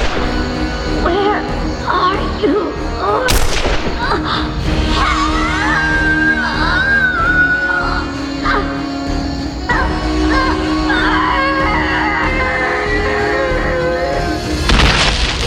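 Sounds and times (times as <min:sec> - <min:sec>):
tense sustained music: 0:00.0 - 0:15.4
pistol shot: 0:03.3 - 0:04.0.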